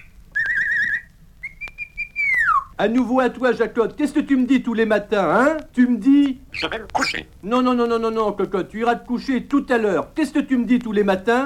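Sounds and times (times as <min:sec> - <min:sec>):
person whistling as if calling a neighbour's dog: 0:00.4 - 0:02.7
speech: 0:02.8 - 0:11.4.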